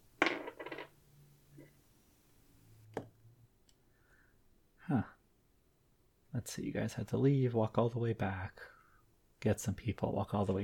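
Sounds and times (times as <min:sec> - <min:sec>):
dice rattling and clattering across a hard surface: 0:00.2 - 0:00.9
speech: 0:04.9 - 0:05.2, 0:06.4 - 0:08.8, 0:09.4 - 0:10.6.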